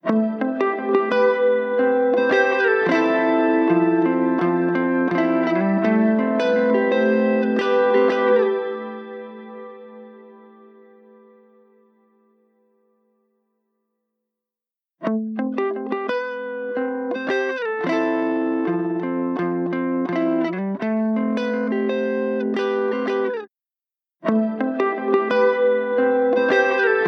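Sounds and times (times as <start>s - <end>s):
guitar ringtone in E minor: 0.0s - 12.8s, 15.1s - 23.5s, 24.2s - 27.0s.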